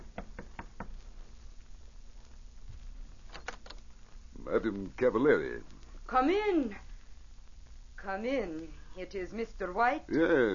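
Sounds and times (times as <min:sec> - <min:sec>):
firm knocks on the wooden door of a suite: 0:00.0 - 0:01.0
speech: 0:04.5 - 0:06.9, 0:08.0 - 0:10.5.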